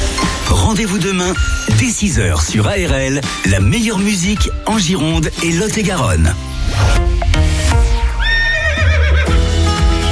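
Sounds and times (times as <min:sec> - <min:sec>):
musical backing: 0:00.0 - 0:10.1
speech: 0:00.7 - 0:07.0
horse whinnying: 0:08.2 - 0:09.4.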